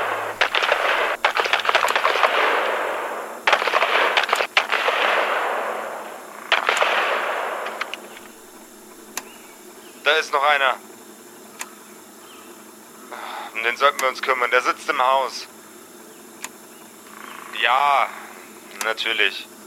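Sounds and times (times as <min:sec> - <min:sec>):
gunfire: 0:00.0 - 0:09.2
speech: 0:10.2 - 0:10.9, 0:13.6 - 0:15.6, 0:17.6 - 0:18.2, 0:18.8 - 0:19.5.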